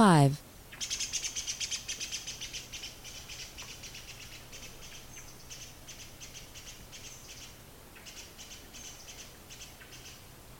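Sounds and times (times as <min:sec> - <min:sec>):
speech: 0:00.0 - 0:01.0
disturbed great spotted woodpecker Dendrocopos major kik alarm calls: 0:00.7 - 0:10.2.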